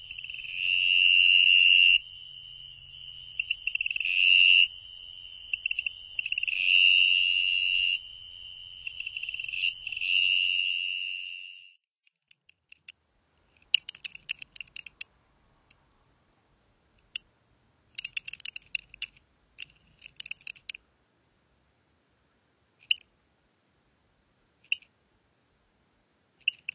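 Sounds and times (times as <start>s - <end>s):
two-spotted tree cricket trilling in North America: 0.0s - 11.8s, 13.5s - 15.1s, 17.9s - 20.8s, 26.4s - 26.7s.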